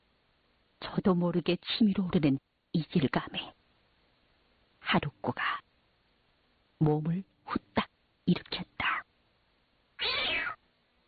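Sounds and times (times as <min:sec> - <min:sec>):
speech: 0:01.0 - 0:03.6, 0:04.9 - 0:05.6, 0:06.8 - 0:07.6, 0:08.3 - 0:08.7
cat crying sharply when caught by a foot: 0:10.0 - 0:10.6.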